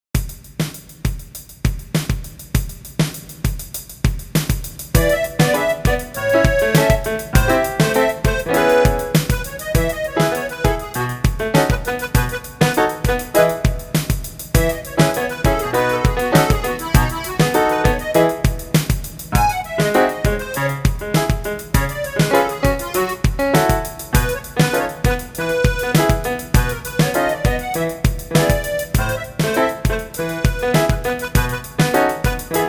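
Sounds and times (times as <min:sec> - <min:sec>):
music: 0:00.2 - 0:32.6.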